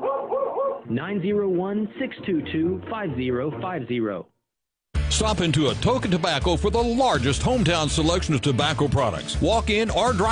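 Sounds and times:
dog barking and yipping: 0.0s - 0.9s
speech: 0.9s - 4.3s, 5.2s - 10.3s.

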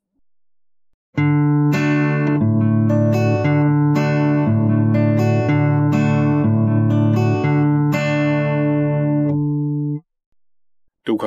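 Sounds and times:
acoustic guitar fingerpicking a D chord with alternating bass: 1.2s - 10.0s.

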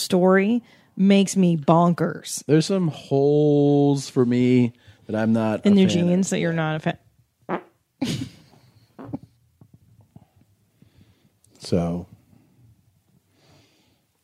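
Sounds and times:
speech: 0.1s - 8.3s, 11.6s - 12.1s
fart into the microphone: 7.5s - 7.8s, 9.0s - 9.4s.

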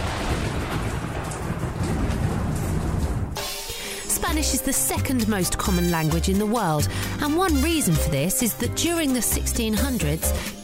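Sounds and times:
steady dense rain pouring down: 0.0s - 5.8s
deep rolling rumble of thunder: 0.0s - 6.6s
speech: 4.3s - 10.6s.

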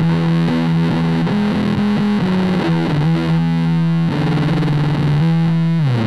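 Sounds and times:
electric guitar through an effects pedal with 8-bit digital conversion: 0.0s - 6.0s.

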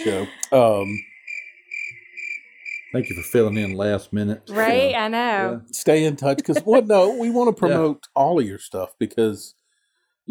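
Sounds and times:
laughter: 0.0s - 1.0s, 3.0s - 9.5s
speech: 0.0s - 1.1s, 2.9s - 9.6s
cricket chirping in a high pulsing trill: 0.5s - 3.9s.

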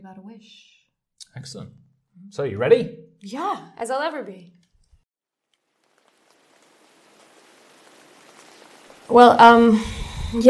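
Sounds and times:
speech: 0.0s - 4.6s, 9.1s - 10.4s
steady rain hissing around a gazebo: 5.5s - 10.4s.

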